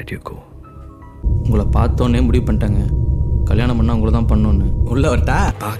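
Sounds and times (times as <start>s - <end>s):
nice tone: 1.3s - 5.5s.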